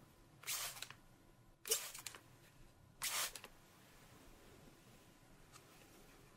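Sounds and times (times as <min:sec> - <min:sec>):
spray bottle spraying water onto cloth: 0:00.5 - 0:00.9, 0:01.7 - 0:02.1, 0:03.0 - 0:03.5.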